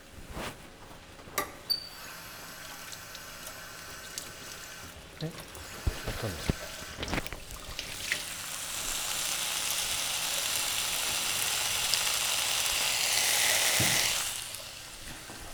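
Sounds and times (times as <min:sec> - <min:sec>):
speech: 0:05.2 - 0:05.6, 0:06.2 - 0:06.6
food frying in a pan: 0:05.6 - 0:15.5.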